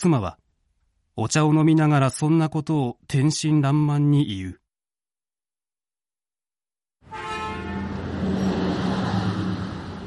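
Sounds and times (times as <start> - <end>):
speech: 0.0 - 0.4, 1.2 - 4.6
roughly driven bus arriving with heavy engine rumble: 7.4 - 10.0.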